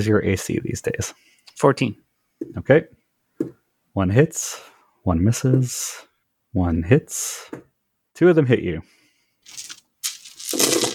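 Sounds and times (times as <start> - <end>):
speech: 0.0 - 9.7
bag of dice dumped onto a table: 9.5 - 10.9.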